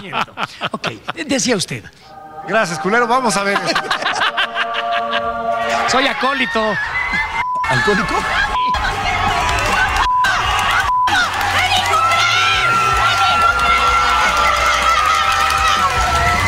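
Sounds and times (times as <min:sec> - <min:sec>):
laughter: 0:00.0 - 0:01.6, 0:03.2 - 0:10.9
speech: 0:00.0 - 0:04.2, 0:05.9 - 0:08.4
crowd cheering and shouting in goal celebration: 0:03.6 - 0:16.4.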